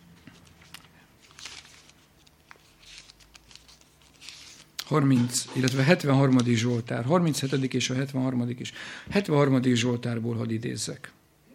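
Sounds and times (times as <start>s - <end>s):
paper book pages flipping: 0.1s - 7.8s
speech: 4.9s - 11.2s.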